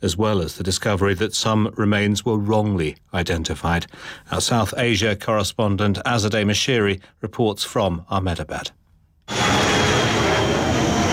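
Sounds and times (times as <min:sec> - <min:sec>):
speech: 0:00.0 - 0:09.6
airplane flying low overhead near the end of an airport runway in Ahmedabad: 0:09.3 - 0:11.1.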